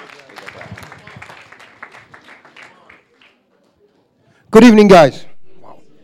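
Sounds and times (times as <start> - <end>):
audience applause: 0.0 - 3.4
speech: 4.5 - 5.3.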